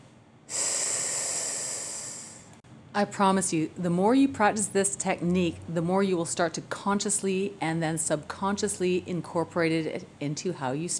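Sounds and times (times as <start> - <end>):
hissing s exhaled on one long breath as a voice exercise: 0.5 - 2.5
speech: 2.9 - 10.9.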